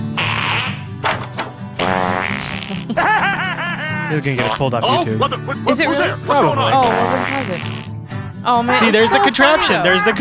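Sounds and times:
farts: 0.0 - 3.0, 6.9 - 8.0
laughter: 2.4 - 7.6, 8.7 - 10.1
speech: 2.7 - 3.4, 4.1 - 10.1.

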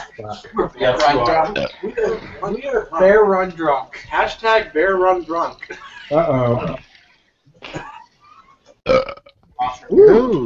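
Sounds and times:
speech: 0.2 - 6.8, 8.8 - 10.4
loud croaky burps: 1.4 - 2.4, 8.8 - 9.4.

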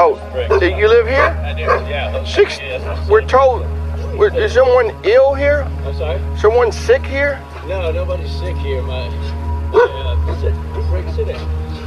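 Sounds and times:
steady low hum: 0.0 - 11.8
speech: 0.1 - 11.8
leashed German Shepherd dog barking at a house: 0.5 - 1.9, 9.7 - 10.0.

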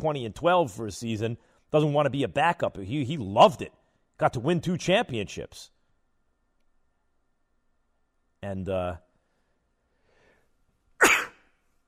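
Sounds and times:
speech: 0.0 - 5.7, 8.4 - 9.0
person sneezing: 11.0 - 11.7.

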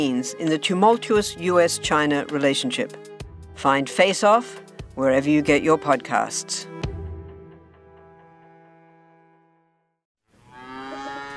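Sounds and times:
speech: 0.0 - 6.7
cattle mooing on a farm: 10.4 - 11.3.

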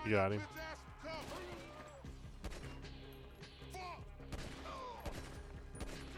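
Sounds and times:
busy video game soundscape: 0.0 - 6.1
gunshots in a shooting video game: 1.1 - 2.8, 4.2 - 6.1.

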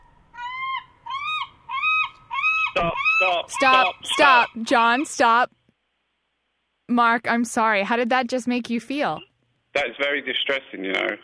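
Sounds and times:
seagulls calling: 0.0 - 5.3
speech: 2.8 - 5.6, 6.9 - 11.2.

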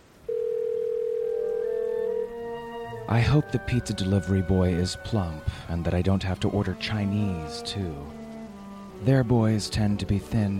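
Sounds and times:
telephone dial tone during a phone call: 0.3 - 2.2
speech: 3.1 - 8.2, 9.0 - 10.5.

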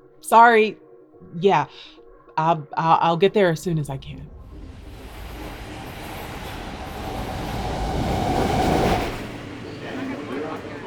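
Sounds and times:
speech: 0.2 - 4.3
subway train rumbling along the tracks from inside the car: 3.8 - 10.8
high whining tone of a subway train: 4.2 - 9.9.

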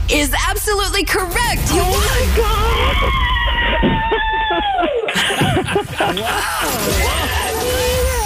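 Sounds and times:
speech: 0.1 - 8.2
group of coworkers shouting and cheering: 2.0 - 8.2
people squealing: 2.0 - 8.2
people laughing: 2.7 - 8.2.

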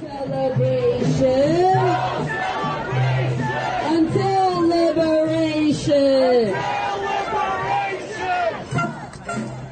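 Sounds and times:
crowd noise: 0.0 - 9.7
large protest crowd chanting and shouting a slogan in unison: 0.3 - 9.0.

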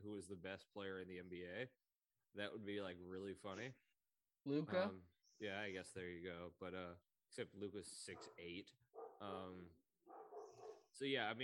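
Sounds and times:
speech: 0.0 - 3.8, 4.4 - 9.8, 10.9 - 11.4
dog barking: 8.1 - 8.4, 9.0 - 10.9.

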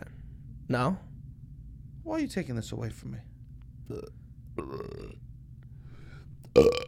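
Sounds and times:
humming background: 0.0 - 6.8
speech: 0.7 - 1.1, 2.0 - 3.3, 3.9 - 5.2, 6.6 - 6.8
person burping on command: 3.9 - 5.2, 6.5 - 6.8.

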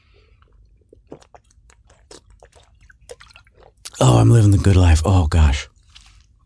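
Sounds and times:
swallowing: 0.0 - 4.0
person drinking flavored water: 0.0 - 4.1
wet mouth clicks: 0.4 - 4.0
speech: 4.0 - 5.7.

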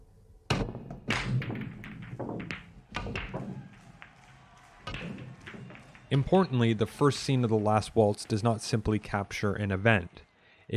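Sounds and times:
pool cue striking a rack of pool balls in a break shot: 0.5 - 6.1
pool balls colliding and rolling with hard clacks and dull thuds: 0.5 - 7.5
speech: 6.1 - 10.7.

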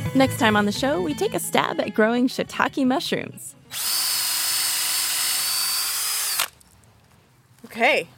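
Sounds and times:
speech: 0.1 - 4.0, 7.8 - 8.1
power drill boring holes in a log: 3.7 - 6.6.

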